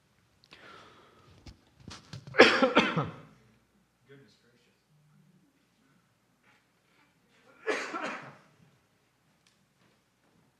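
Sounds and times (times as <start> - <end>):
person coughing during a worship service: 2.3 - 3.3, 7.5 - 8.5.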